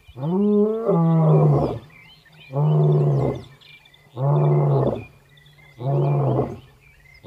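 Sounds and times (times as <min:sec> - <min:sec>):
lion roaring in Kruger National Park, South Africa: 0:00.2 - 0:05.1, 0:05.8 - 0:06.6.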